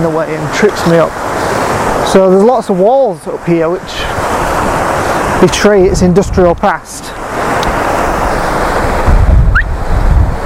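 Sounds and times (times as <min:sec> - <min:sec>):
speech: 0:00.0 - 0:01.2, 0:02.1 - 0:04.0, 0:05.4 - 0:07.0
water rushing over rocks beside old industrial walls: 0:00.0 - 0:10.4
wind noise: 0:03.8 - 0:10.4.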